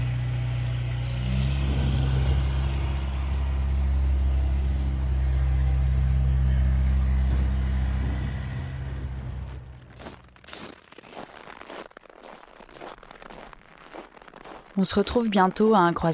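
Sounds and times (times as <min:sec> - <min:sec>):
loud deep tractor engine idling at the edge of a path: 0:00.1 - 0:10.5
speech: 0:14.8 - 0:16.1.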